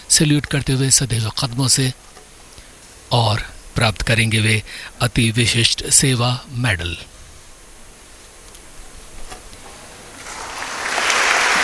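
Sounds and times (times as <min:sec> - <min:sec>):
speech: 0:00.1 - 0:02.2, 0:03.1 - 0:07.1
audience applause at a military medal ceremony: 0:10.1 - 0:11.6.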